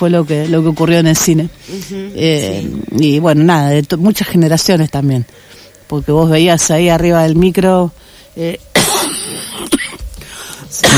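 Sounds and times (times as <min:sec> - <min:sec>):
speech: 0:00.0 - 0:08.7
person coughing: 0:08.8 - 0:10.1, 0:10.8 - 0:10.9.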